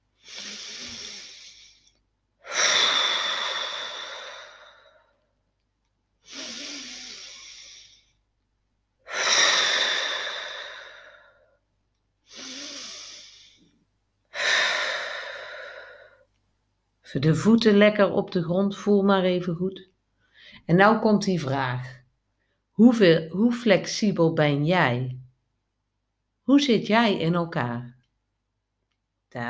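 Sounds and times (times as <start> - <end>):
slow deep breathing during a guided relaxation exercise: 0.1 - 5.3, 6.2 - 8.2, 9.0 - 11.6, 12.2 - 16.4
speech: 17.1 - 19.9, 20.7 - 22.0, 22.8 - 25.2, 26.5 - 28.0.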